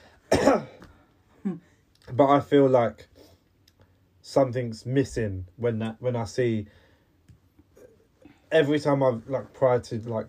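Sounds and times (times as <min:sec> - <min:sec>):
harsh cough: 0:00.3 - 0:00.8
speech: 0:00.5 - 0:00.8, 0:01.4 - 0:03.1, 0:04.3 - 0:06.8, 0:08.5 - 0:10.2.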